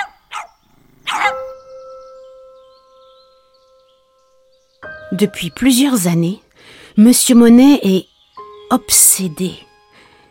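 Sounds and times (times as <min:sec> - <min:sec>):
small dogs giving sharp high-pitched yaps: 0:00.0 - 0:01.5
speech: 0:05.1 - 0:08.1, 0:08.7 - 0:09.7.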